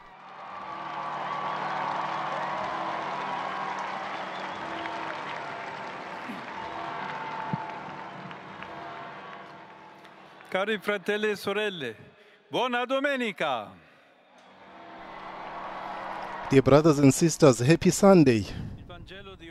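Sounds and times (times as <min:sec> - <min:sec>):
large enthusiastic crowd clapping: 0:00.0 - 0:11.3, 0:14.6 - 0:17.6
speech: 0:10.5 - 0:13.8, 0:16.5 - 0:18.6.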